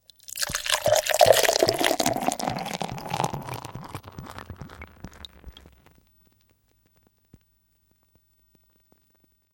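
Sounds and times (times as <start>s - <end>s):
beer sizzling: 0.2s - 5.9s.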